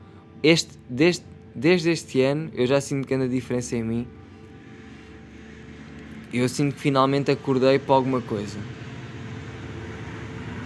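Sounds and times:
speech: 0.4s - 4.2s, 6.3s - 8.8s
giant train passing: 5.3s - 10.6s.

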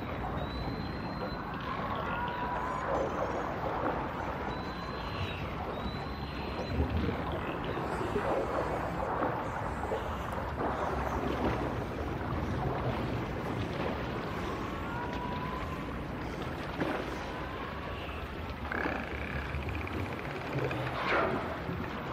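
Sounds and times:
dolphins whistling underwater: 0.0s - 12.8s, 13.8s - 21.7s
steady rumble of water and motor-like noise: 0.0s - 22.1s.

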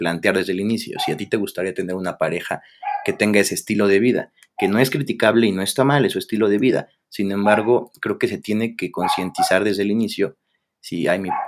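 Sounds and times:
speech: 0.0s - 11.4s
dog barking: 0.9s - 1.3s, 2.8s - 3.2s, 9.0s - 9.6s, 11.2s - 11.4s.

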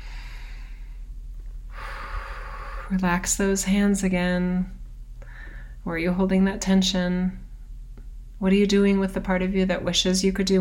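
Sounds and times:
deep breath during a guided relaxation exercise: 0.0s - 1.1s, 1.7s - 3.0s, 5.2s - 5.8s
speech: 2.9s - 4.8s, 5.8s - 7.4s, 8.4s - 10.6s.

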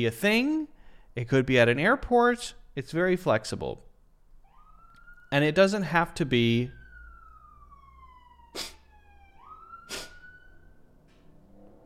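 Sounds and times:
speech: 0.0s - 3.9s, 5.3s - 6.8s, 8.6s - 8.8s
siren wailing outside: 4.4s - 11.8s.

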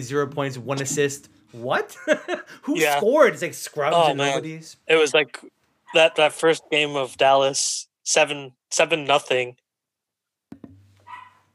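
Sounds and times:
speech: 0.0s - 9.6s
laughter: 1.8s - 2.9s
dog barking sharply: 5.9s - 6.4s, 11.0s - 11.5s.

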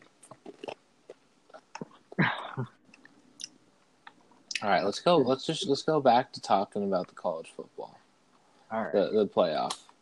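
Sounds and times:
faint clicking mouth and chewing noises: 0.0s - 2.0s
short throaty burp: 1.5s - 2.7s
speech: 4.7s - 7.9s, 8.7s - 9.8s.

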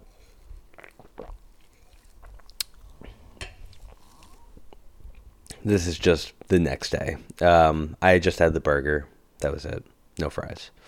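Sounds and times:
person sipping a drink with slurping and lip noises: 0.0s - 5.6s
quiet swallow: 0.7s - 4.8s
speech: 5.6s - 10.8s.

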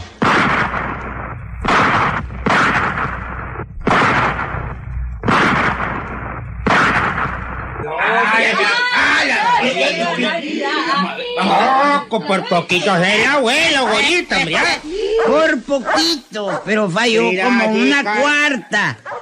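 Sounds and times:
revolver gunshots: 0.0s - 7.8s
laughter: 8.2s - 12.1s, 14.4s - 15.4s
speech: 10.9s - 19.1s.

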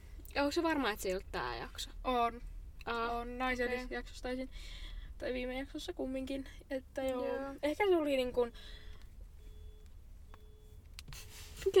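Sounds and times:
low rumble: 0.0s - 11.7s
speech: 0.4s - 8.8s
burglar alarm beeping outside: 9.4s - 10.8s.

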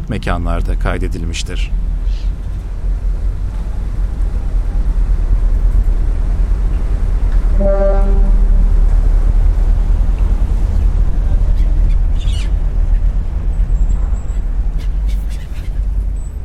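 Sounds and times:
water noise: 0.0s - 15.1s
constant low rumble of engine: 0.0s - 16.4s
wind: 0.0s - 16.4s
speech: 0.1s - 2.4s, 7.6s - 8.2s
ferry horn blast at a pier: 7.3s - 9.4s.

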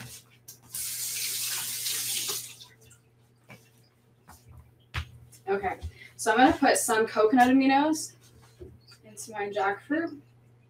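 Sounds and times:
running tap water while hands are washed at a kitchen sink: 0.5s - 2.9s
speech: 5.5s - 8.2s, 9.3s - 10.3s.

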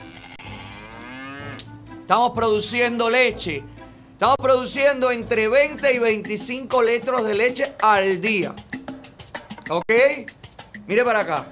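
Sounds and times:
cow mooing in a long low call: 0.0s - 1.7s
speech: 2.1s - 8.7s, 9.7s - 11.5s.

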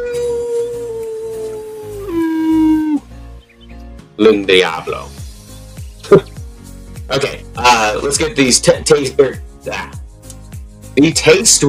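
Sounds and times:
person imitating a howl: 0.0s - 3.1s
speech: 4.2s - 5.2s, 7.1s - 10.0s, 11.0s - 11.6s.

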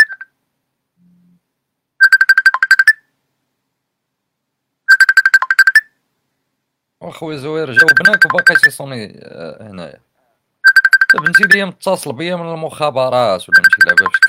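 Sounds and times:
phone ringtone of rapid repeated electronic tones: 0.0s - 0.3s, 2.0s - 3.0s, 4.9s - 5.9s, 7.7s - 8.7s, 10.6s - 11.6s, 13.5s - 14.2s
speech: 7.0s - 10.1s, 11.1s - 14.2s.

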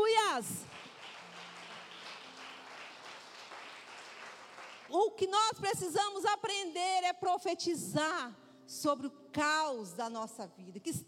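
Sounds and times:
crowd of people applauding: 0.6s - 4.9s
speech: 4.9s - 11.0s.

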